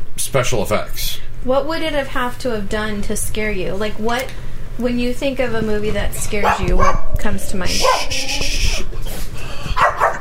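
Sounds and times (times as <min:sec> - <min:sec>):
hum: 0:00.0 - 0:10.1
speech: 0:00.3 - 0:08.6
dog barking: 0:06.4 - 0:07.1, 0:07.7 - 0:08.2, 0:09.8 - 0:10.1
dog whining or yipping: 0:07.7 - 0:10.1.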